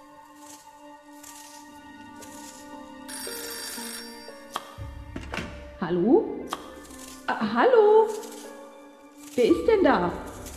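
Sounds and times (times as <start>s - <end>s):
telephone bell ringing: 3.1s - 4.5s
speech: 5.9s - 6.5s, 7.4s - 8.2s, 9.4s - 10.2s.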